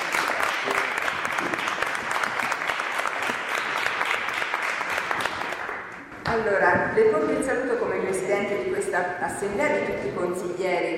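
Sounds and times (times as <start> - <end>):
crowd at a city council assembly applauding: 0.0 - 6.1
speech: 6.4 - 10.9.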